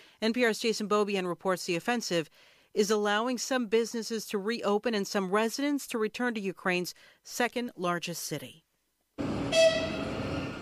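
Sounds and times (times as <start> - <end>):
speech: 0.2 - 8.6
bright sustained horn-like whine: 9.2 - 10.5
train rumbling pulling into a station: 9.2 - 10.5.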